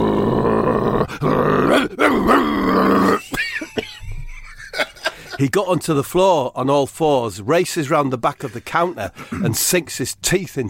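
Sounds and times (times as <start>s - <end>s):
man growling like a dog: 0.0s - 3.3s
speech: 1.2s - 3.2s, 5.4s - 10.6s.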